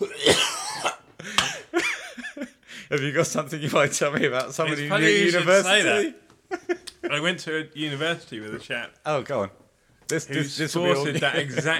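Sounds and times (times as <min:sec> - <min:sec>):
person with whooping cough coughing: 0:00.0 - 0:01.7
laughter: 0:01.2 - 0:07.5, 0:10.8 - 0:11.7
speech: 0:02.9 - 0:06.2, 0:07.1 - 0:11.7.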